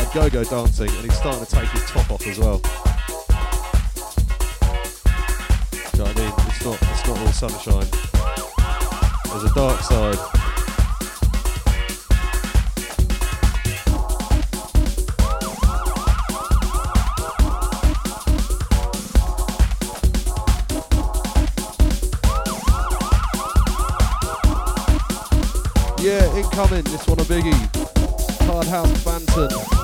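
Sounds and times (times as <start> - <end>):
fast dance beat with heavy bass: 0.0 - 29.8
speech: 0.1 - 3.1, 6.0 - 8.4, 9.3 - 10.4, 26.0 - 27.8, 28.6 - 29.8
rising and falling police-style siren wails: 8.4 - 11.2, 15.2 - 18.4, 22.3 - 25.6.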